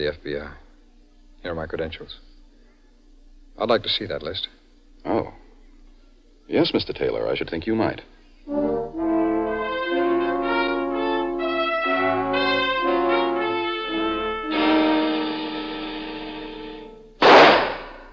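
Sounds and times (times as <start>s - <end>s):
speech: 0.0s - 0.6s, 1.4s - 2.3s, 3.6s - 5.4s, 6.5s - 8.8s
musical tones: 8.5s - 17.2s
pistol shot at target practice: 17.2s - 18.1s.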